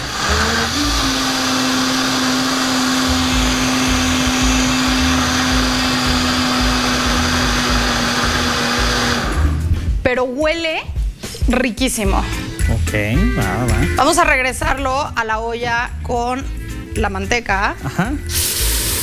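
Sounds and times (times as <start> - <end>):
electric blender blending a thick mixture with broth: 0.0 - 9.7, 18.3 - 19.0
speech: 10.1 - 10.9, 11.5 - 18.5.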